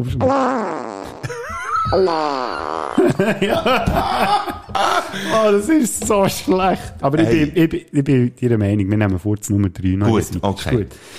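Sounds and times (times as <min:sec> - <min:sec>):
speech: 0:00.0 - 0:00.9, 0:01.9 - 0:11.1
buzzy wavering fart sound effect: 0:00.2 - 0:03.2
laughter: 0:03.0 - 0:07.6.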